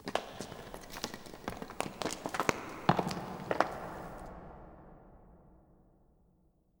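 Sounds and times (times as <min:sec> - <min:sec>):
rocks: 0:00.0 - 0:04.2.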